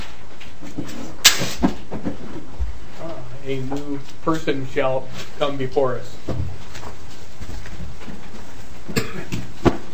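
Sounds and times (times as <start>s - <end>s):
quiet hum: 0.0s - 9.9s
speech: 3.5s - 6.4s
person coughing during a committee hearing: 8.9s - 9.4s.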